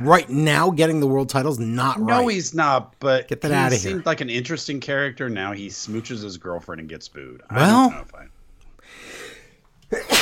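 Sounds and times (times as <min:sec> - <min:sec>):
speech: 0:00.0 - 0:08.3
soft drawn-in breath before a sneeze: 0:08.8 - 0:09.6
sick person sneezing: 0:09.9 - 0:10.1.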